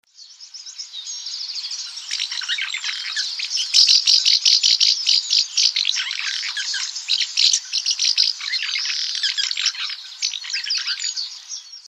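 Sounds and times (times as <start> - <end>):
house martin calling: 2.0 - 11.4.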